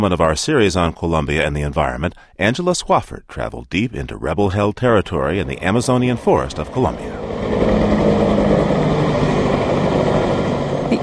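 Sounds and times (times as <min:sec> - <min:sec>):
speech: 0:00.0 - 0:08.0
two military helicopters on airport tarmac in Florencia, Colombia: 0:06.1 - 0:11.0.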